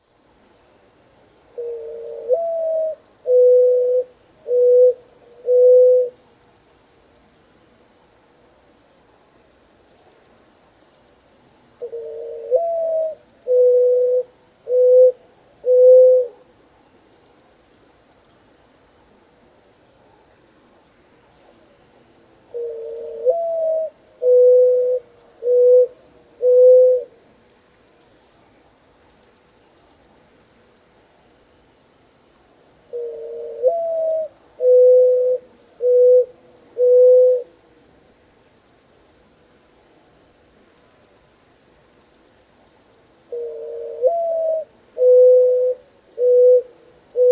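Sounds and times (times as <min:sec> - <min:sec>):
mourning dove cooing: 0:01.5 - 0:06.2, 0:11.8 - 0:16.6, 0:22.5 - 0:27.3, 0:32.8 - 0:37.6, 0:43.2 - 0:47.3.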